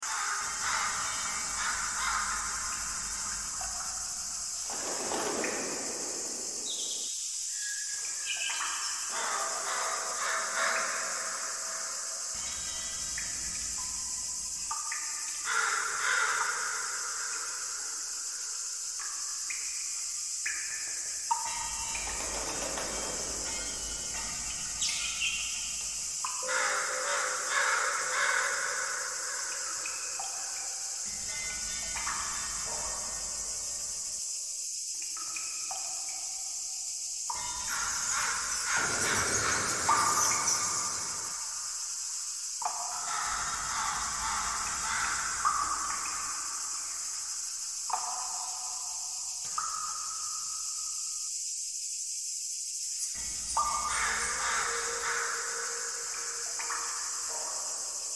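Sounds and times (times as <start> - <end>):
overgrowth ambience: 0.0 - 58.1.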